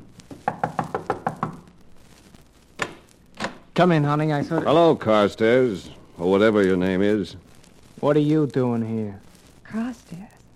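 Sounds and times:
firm knocks on a door: 0:00.4 - 0:01.7
speech: 0:03.8 - 0:07.4, 0:08.0 - 0:10.3.

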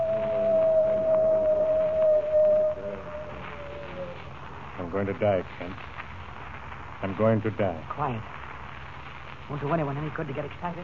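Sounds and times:
coyote howling: 0:00.0 - 0:04.4
low rumble: 0:00.0 - 0:10.8
speech: 0:05.0 - 0:05.9, 0:07.0 - 0:08.4, 0:09.5 - 0:10.8.

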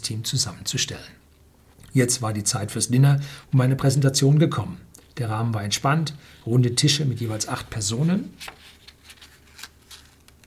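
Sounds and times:
speech: 0:00.0 - 0:01.3, 0:02.0 - 0:08.7
paper pages being turned by a person: 0:07.2 - 0:10.4.

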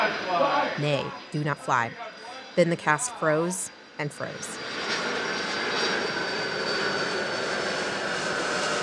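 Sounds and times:
airplane passing over an amphitheater a few miles from Louisville airport: 0:00.0 - 0:01.3, 0:03.7 - 0:08.8
speech: 0:00.3 - 0:04.8.

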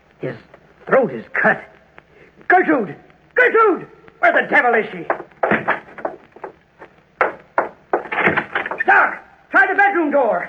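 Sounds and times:
speech: 0:00.2 - 0:01.8, 0:02.5 - 0:05.8, 0:10.2 - 0:10.4
door opening with creaks: 0:05.1 - 0:06.6, 0:07.2 - 0:08.9.

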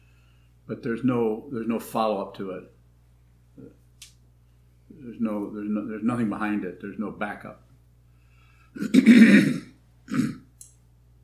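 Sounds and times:
speech: 0:00.7 - 0:02.8, 0:03.6 - 0:03.8, 0:04.9 - 0:07.6, 0:08.8 - 0:10.2
person clearing throat: 0:08.8 - 0:10.5.

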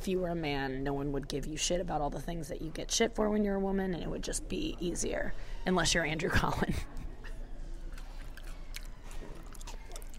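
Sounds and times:
speech: 0:00.0 - 0:07.0
wet chewing of potato salad into a microphone: 0:07.8 - 0:10.1.

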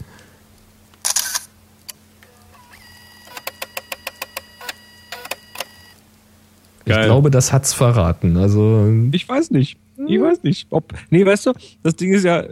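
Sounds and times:
older model camera taking a photo: 0:01.0 - 0:01.5, 0:02.6 - 0:06.0
speech: 0:06.9 - 0:12.5.

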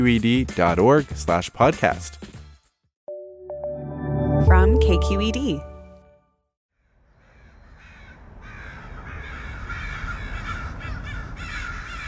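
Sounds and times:
speech: 0:00.0 - 0:02.3, 0:04.4 - 0:05.7
American crows cawing: 0:06.8 - 0:12.0.

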